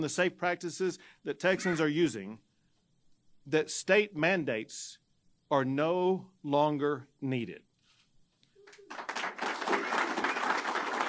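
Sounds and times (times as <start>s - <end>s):
speech: 0.0s - 2.5s, 3.4s - 7.7s
crowd applause and cheering: 8.6s - 11.0s.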